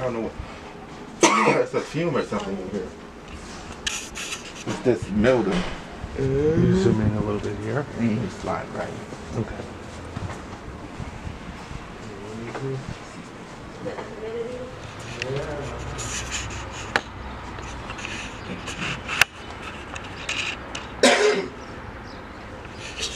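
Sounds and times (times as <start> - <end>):
speech: 0.1 - 0.7, 1.4 - 3.0, 4.6 - 9.8, 12.6 - 13.0
person coughing harshly: 1.2 - 1.7, 21.0 - 21.6
faint murmuring voices in a noisy room: 4.3 - 9.8, 11.8 - 19.2.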